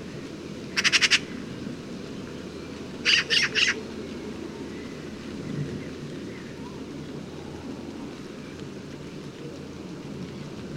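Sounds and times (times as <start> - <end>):
Eurasian magpie Pica pica chattering: 0.8 - 1.3, 3.1 - 3.8.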